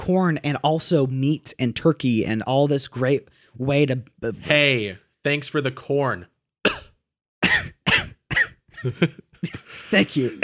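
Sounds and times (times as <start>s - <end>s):
speech: 0.0s - 6.3s, 8.8s - 10.4s
harsh coughs: 6.7s - 9.9s
laughter: 8.8s - 10.4s.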